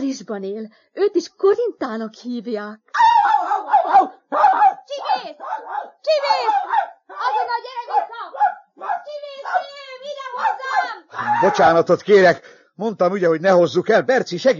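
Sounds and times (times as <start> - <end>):
speech: 0.0 - 8.4, 11.2 - 14.5
puli herding dog puppy barking: 3.0 - 11.1.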